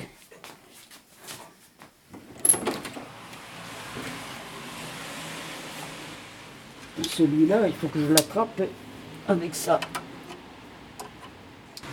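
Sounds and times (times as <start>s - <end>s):
electric roller shutter closing: 2.1s - 6.2s
speech: 7.0s - 10.0s.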